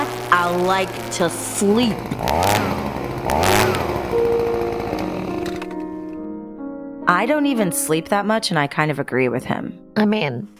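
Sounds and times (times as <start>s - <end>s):
leaf blower engine droning and revving: 0.0s - 6.2s
speech: 0.3s - 4.6s, 7.1s - 10.5s.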